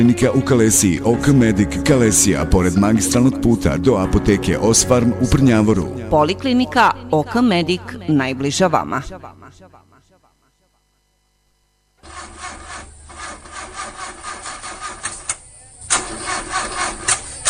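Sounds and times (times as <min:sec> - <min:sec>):
speech: 0:00.0 - 0:09.9
old car engine cranking without catching: 0:12.0 - 0:17.4.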